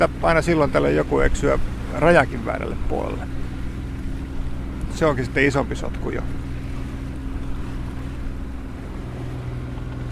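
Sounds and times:
speech: 0:00.0 - 0:03.4, 0:05.0 - 0:06.4
boat engine droning while cruising on the open sea: 0:00.0 - 0:10.1
water noise on the open sea: 0:00.0 - 0:10.1.

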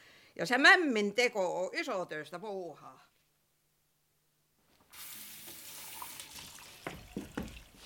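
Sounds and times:
speech: 0:00.4 - 0:03.1
water pouring from a tap into a container: 0:04.9 - 0:07.8
clinks and splashes: 0:05.4 - 0:07.8.

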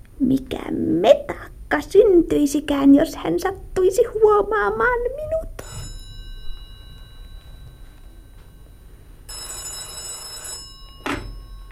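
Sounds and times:
low steady hum: 0:00.0 - 0:11.6
speech: 0:00.2 - 0:05.4
telephone bell ringing: 0:05.6 - 0:11.6.

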